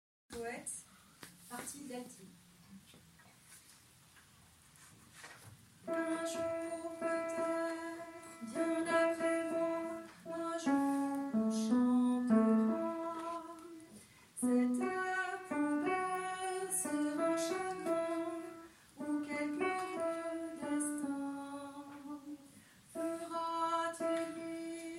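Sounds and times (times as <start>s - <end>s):
alto voices singing: 5.9s - 24.9s.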